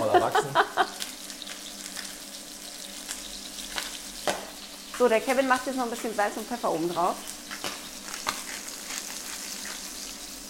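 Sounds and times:
laughter: 0.0 - 1.0
food frying and sizzling in hot fat: 0.0 - 10.4
speech: 5.0 - 7.3.

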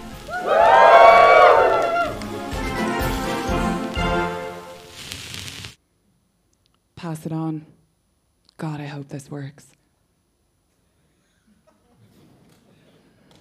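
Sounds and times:
circus audience shouting woohoo and cheering: 0.0 - 3.4
speech: 0.4 - 0.6, 7.1 - 7.8, 8.6 - 9.8.

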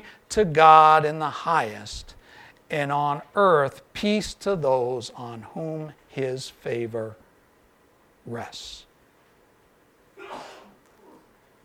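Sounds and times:
quiet hiss: 0.0 - 11.6
speech: 0.1 - 7.2, 8.2 - 8.9
person sneezing: 10.2 - 11.3.

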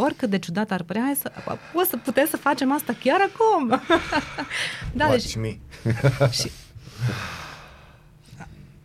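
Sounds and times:
speech: 0.0 - 7.3
deep abdominal breathing during a breathing exercise: 1.0 - 5.0, 6.4 - 8.8
laughter: 3.2 - 4.8, 5.8 - 6.6.

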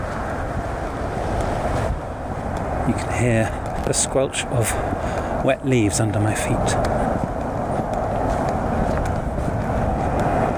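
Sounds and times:
wind blowing through trees: 0.0 - 10.5
speech: 2.9 - 7.3.

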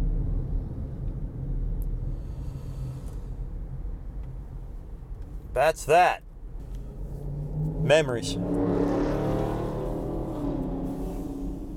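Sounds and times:
Dodge Charger exhaust roaring while accelerating past on Passyunk Avenue: 0.0 - 11.7
speech: 5.6 - 6.3, 7.9 - 9.1.

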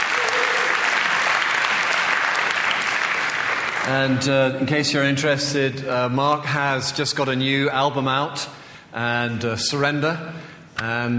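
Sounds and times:
room full of people applauding: 0.0 - 4.1
speech: 3.9 - 11.1.

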